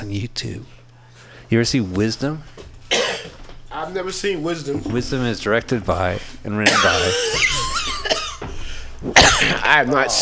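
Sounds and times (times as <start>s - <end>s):
speech: 0.1s - 0.8s, 1.5s - 2.6s, 3.8s - 7.6s, 9.0s - 10.2s
sharp cough into the microphone: 2.9s - 3.4s, 6.6s - 8.4s, 9.0s - 9.7s.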